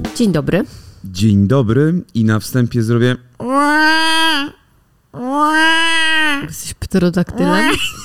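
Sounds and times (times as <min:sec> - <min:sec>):
speech: 0:00.2 - 0:04.6, 0:05.2 - 0:05.8, 0:06.4 - 0:08.0
person imitating a crying baby: 0:03.4 - 0:04.6, 0:05.2 - 0:06.5, 0:07.4 - 0:08.0
laughter: 0:07.4 - 0:08.0.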